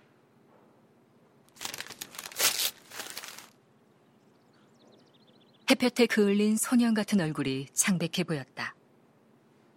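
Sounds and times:
mail envelopes being ripped open at an office desk: 1.5s - 3.6s
speech: 5.7s - 8.7s.

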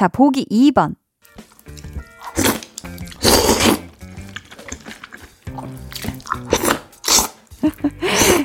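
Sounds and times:
speech: 0.0s - 1.8s, 7.6s - 8.4s
chewing: 1.3s - 8.4s
slurping noodles in cold soybean soup: 1.4s - 8.4s.

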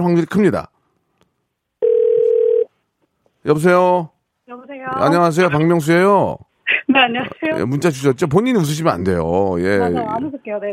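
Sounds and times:
speech: 0.0s - 0.7s, 3.4s - 10.7s
electronic ringback tone from an outgoing phone call: 1.8s - 2.7s.

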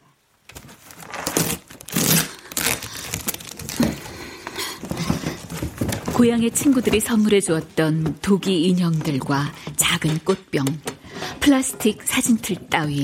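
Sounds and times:
crinkly rustling of cardboard: 0.4s - 10.2s
packing tape torn off a cardboard moving box: 0.5s - 7.0s
speech: 6.2s - 13.0s.

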